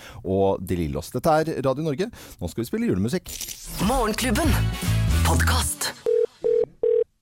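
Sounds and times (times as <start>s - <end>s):
speech: 0.2s - 6.0s
phone ringing with short electronic beeps: 6.1s - 7.2s.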